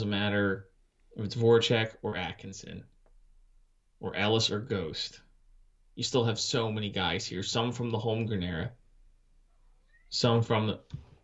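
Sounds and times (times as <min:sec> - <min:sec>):
speech: 0:00.0 - 0:02.9, 0:04.0 - 0:05.2, 0:06.0 - 0:08.8, 0:10.1 - 0:11.0
domestic male cat meowing to be let in: 0:09.9 - 0:10.2.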